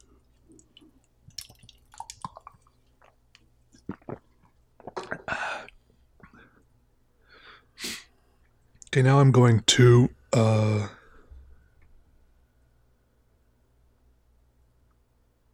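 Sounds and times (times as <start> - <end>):
person sipping seltzer: 0.0 - 6.4
speech: 8.9 - 11.0.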